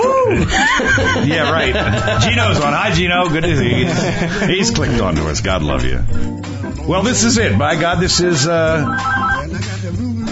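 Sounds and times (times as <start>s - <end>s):
laughter: 0.1s - 5.1s
speech: 0.3s - 10.3s
telephone ringing in a studio: 8.8s - 9.6s.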